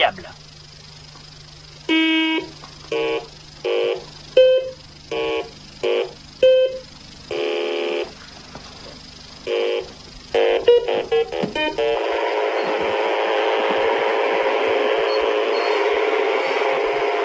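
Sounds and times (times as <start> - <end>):
steady low hum: 0.0 - 17.2
short electronic beeps from a toy car's programming keypad: 15.0 - 15.8.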